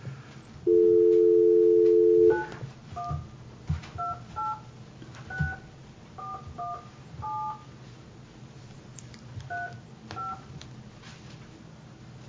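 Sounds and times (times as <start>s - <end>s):
low steady hum: 0.0s - 12.2s
touch-tone beeps from dialing a telephone number to a county office: 0.7s - 2.5s.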